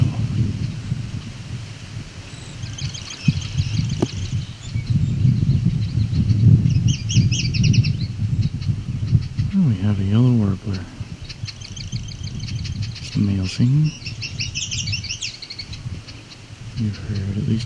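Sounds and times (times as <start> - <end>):
low voice sounds: 0.0 - 0.5, 9.5 - 11.1, 13.0 - 14.0, 16.8 - 17.6
steady outdoor noise: 0.0 - 17.6
yellow warbler singing: 2.3 - 17.6.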